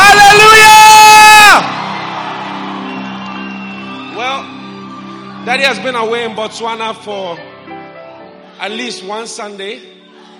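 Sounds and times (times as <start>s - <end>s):
loud high shout: 0.0s - 1.6s
whooping cry: 0.0s - 1.6s
large church audience screaming and cheering in praise: 0.0s - 10.3s
speech: 5.6s - 7.8s, 8.6s - 10.0s.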